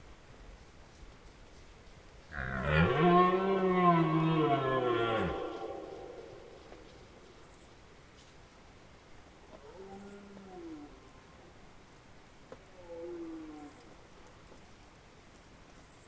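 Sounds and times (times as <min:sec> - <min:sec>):
red deer roaring: 0:02.3 - 0:07.4.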